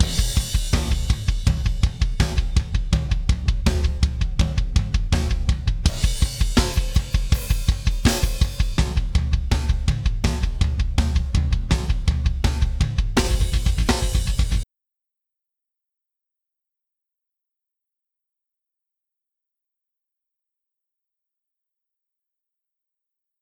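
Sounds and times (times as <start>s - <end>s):
dry drums: 0.0s - 14.6s.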